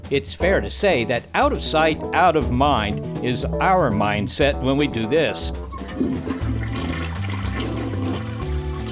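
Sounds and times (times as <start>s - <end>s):
speech: 0.1s - 6.8s
toilet flushing: 5.7s - 8.8s.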